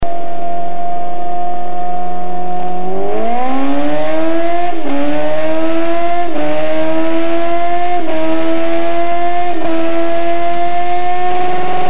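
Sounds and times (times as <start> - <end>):
Suzuki GSX1300R Hayabusa motorcycle engine with Micron exhaust: 0.0 - 11.8.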